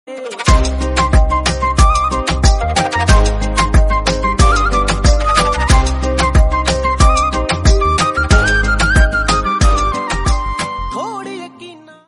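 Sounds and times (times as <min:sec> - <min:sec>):
instrumental flute playing: 0:00.5 - 0:11.1.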